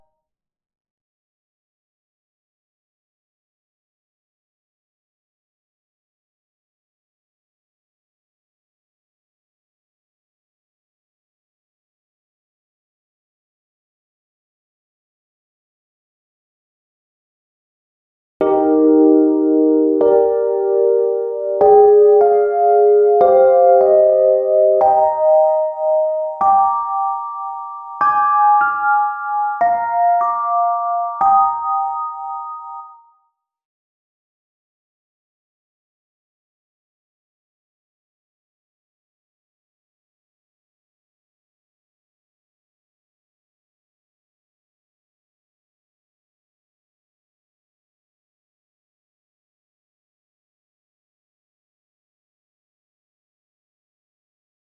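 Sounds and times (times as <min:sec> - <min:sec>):
electric piano: 0:18.4 - 0:33.0.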